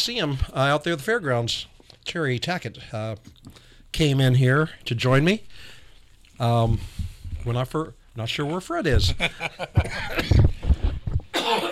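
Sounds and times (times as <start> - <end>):
speech: 0.0 - 5.7, 6.4 - 10.6, 11.4 - 11.7
man with a lingering cough coughing: 9.8 - 10.6, 11.3 - 11.7.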